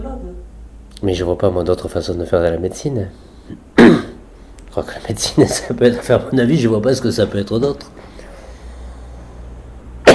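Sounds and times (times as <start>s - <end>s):
speech: 1.0s - 3.6s, 4.8s - 8.0s
person coughing: 3.8s - 4.2s.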